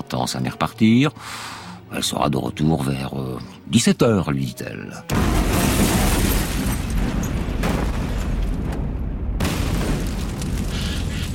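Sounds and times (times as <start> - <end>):
speech: 0.1 - 6.1
car bomb explosion in Malta: 5.1 - 11.3.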